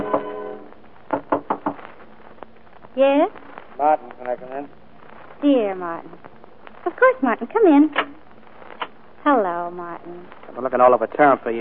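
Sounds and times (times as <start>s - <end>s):
firm knocks on a door: 1.1s - 1.8s
speech: 3.0s - 4.8s, 5.4s - 8.2s, 9.2s - 11.5s.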